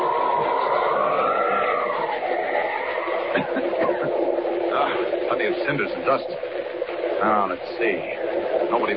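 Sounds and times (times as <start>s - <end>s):
moving train roaring past: 0.0s - 8.9s
laughter: 3.1s - 5.1s
speech: 5.4s - 6.6s, 7.2s - 8.9s.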